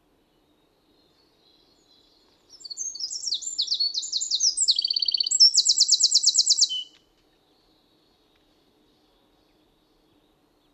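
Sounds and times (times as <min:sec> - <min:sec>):
Eurasian wren Troglodytes troglodytes singing: 0:01.5 - 0:07.0.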